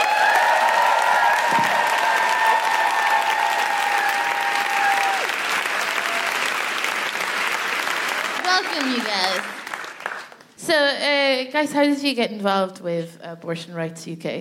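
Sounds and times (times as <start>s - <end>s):
audience applause welcoming guests: 0.0s - 10.5s
speech: 11.4s - 14.4s.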